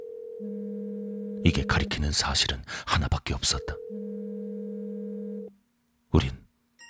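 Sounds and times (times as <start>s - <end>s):
mobile phone ringing inside a bag: 0.0s - 2.4s, 3.5s - 5.5s
speech: 0.4s - 0.7s, 1.5s - 4.0s, 6.1s - 6.4s.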